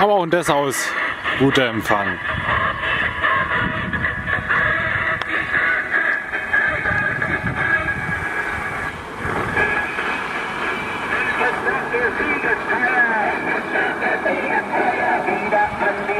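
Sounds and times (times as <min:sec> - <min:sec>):
speech: 0:00.0 - 0:02.6
train rolling past with rattling wheels: 0:00.0 - 0:16.1.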